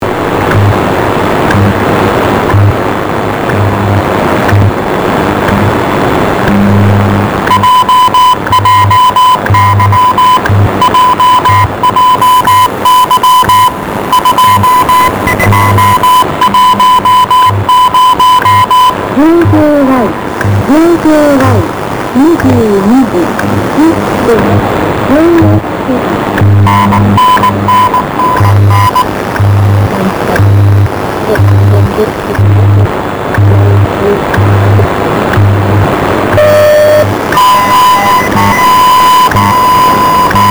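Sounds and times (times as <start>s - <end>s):
JJY 5MHz time signal radio broadcast: 0.0s - 40.4s.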